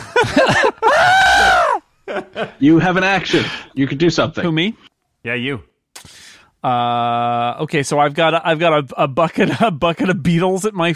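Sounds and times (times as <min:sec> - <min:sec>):
speech: 0:00.2 - 0:00.7, 0:02.6 - 0:10.9
person screaming loudly: 0:00.8 - 0:01.8.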